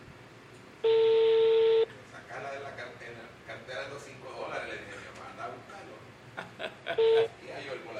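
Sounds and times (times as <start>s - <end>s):
phone call ringback tone beep: 0.8s - 1.9s, 7.0s - 7.3s
person chuckling: 6.4s - 7.4s.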